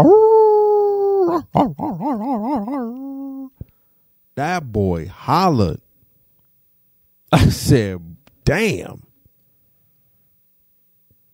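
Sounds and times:
speech: 0:00.0 - 0:00.3, 0:01.3 - 0:03.6, 0:04.4 - 0:05.8, 0:07.3 - 0:09.0
dog howling with a yodel-like warble: 0:00.0 - 0:03.6.

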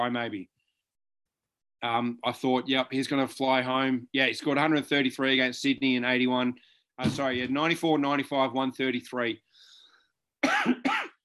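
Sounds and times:
speech: 0:00.0 - 0:00.6, 0:01.8 - 0:09.7, 0:10.4 - 0:11.0
person coughing: 0:10.4 - 0:11.2.

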